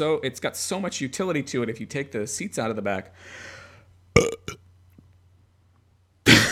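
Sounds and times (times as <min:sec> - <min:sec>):
speech: 0:00.0 - 0:03.6
person burping: 0:04.2 - 0:04.6.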